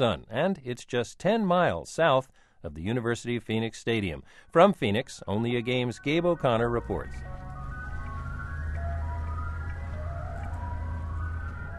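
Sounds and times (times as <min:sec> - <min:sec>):
speech: 0:00.0 - 0:07.4
tinny ice cream truck jingle: 0:05.2 - 0:11.7
steady low engine rumble: 0:06.1 - 0:11.7.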